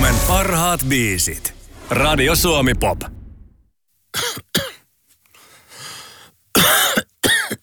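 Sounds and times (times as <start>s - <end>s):
speech: 0.2s - 3.2s, 4.1s - 4.3s
person coughing: 4.2s - 4.8s, 6.6s - 7.6s.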